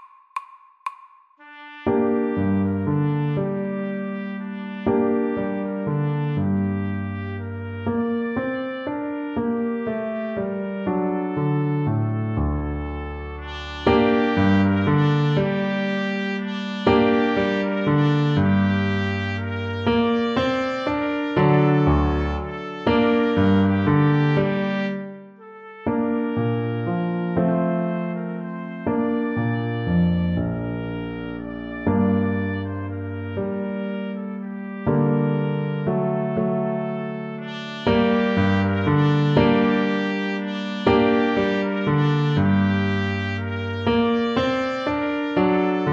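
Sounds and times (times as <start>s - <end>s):
bugle horn: 1.4s - 8.7s, 9.7s - 26.9s, 27.6s - 45.9s.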